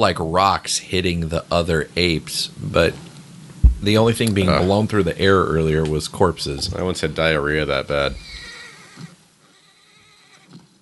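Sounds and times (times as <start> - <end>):
speech: 0.0 - 3.1, 3.8 - 8.3
dense continuous sound: 0.0 - 8.5
horse whinnying in a film scene: 8.2 - 10.6.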